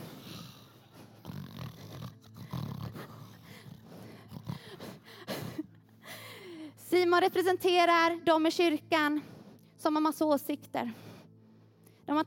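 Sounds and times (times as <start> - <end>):
person snoring loudly with rasping breaths: 0.0 - 5.6
speech: 6.9 - 11.1, 12.1 - 12.2.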